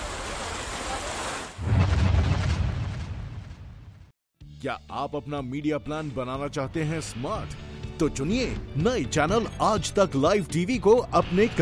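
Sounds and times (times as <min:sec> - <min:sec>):
heavy rain: 0:00.0 - 0:02.3
speech: 0:04.6 - 0:11.5.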